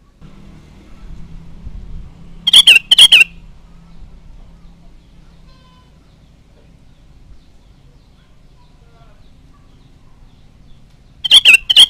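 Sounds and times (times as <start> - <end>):
low background rumble: 0.0 - 11.3
Sooty-headed bulbul slurred phrases of paired notes: 2.4 - 3.5.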